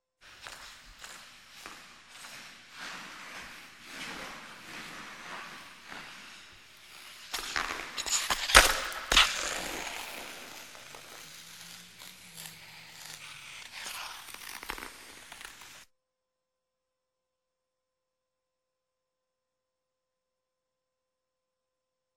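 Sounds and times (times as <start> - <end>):
ice skating jump: 0.2 - 15.9.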